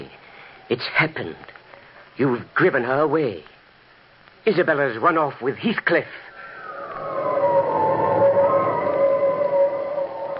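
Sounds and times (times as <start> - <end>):
speech: 0.7 - 1.6, 2.2 - 3.5, 4.4 - 6.2
howling wind: 6.3 - 10.3.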